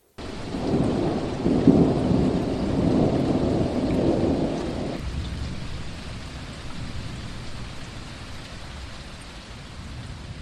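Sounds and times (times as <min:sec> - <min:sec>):
steady dense rain falling: 0:00.1 - 0:10.3
deep rolling rumble of thunder: 0:00.2 - 0:07.9.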